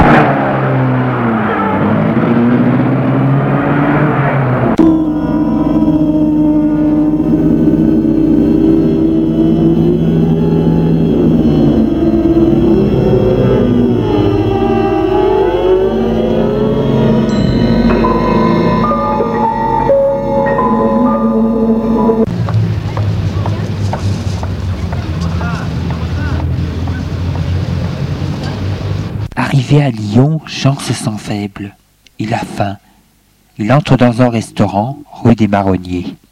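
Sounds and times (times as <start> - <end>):
car engine starting and pulling away through the gears: 0.0 - 29.3
speech: 29.7 - 32.8, 33.6 - 36.2.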